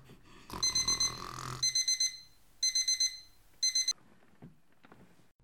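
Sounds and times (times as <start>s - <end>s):
electronic alarm clock ringing: 0.6s - 4.0s.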